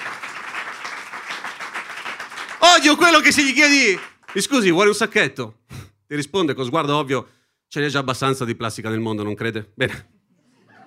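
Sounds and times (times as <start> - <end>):
audience applause: 0.0 - 4.9
speech: 2.7 - 10.1.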